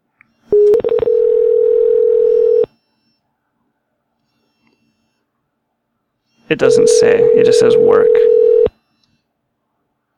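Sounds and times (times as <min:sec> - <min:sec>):
loud steady telephone dial tone: 0:00.6 - 0:02.7, 0:06.7 - 0:08.7
speech: 0:06.5 - 0:08.5.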